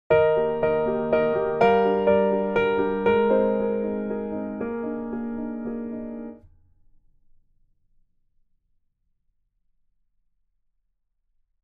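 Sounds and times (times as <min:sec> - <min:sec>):
diatonic music composition: 0:00.1 - 0:06.4.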